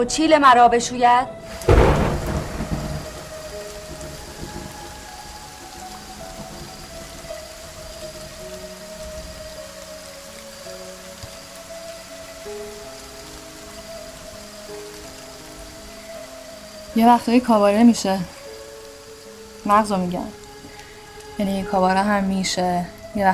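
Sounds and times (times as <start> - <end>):
speech: 0.0 - 2.1, 17.0 - 18.4, 19.7 - 20.4, 21.4 - 23.3
thunder crack and rumble: 1.4 - 9.8
steady hissing rainfall: 1.4 - 23.3.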